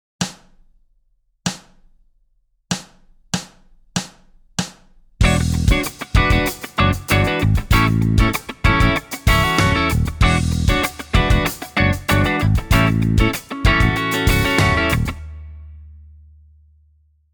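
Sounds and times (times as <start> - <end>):
funk backing music: 5.2 - 15.4.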